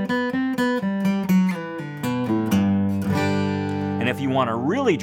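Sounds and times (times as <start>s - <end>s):
guitar lick on open strings ending with a G chord: 0.2s - 5.0s
speech: 4.1s - 5.0s.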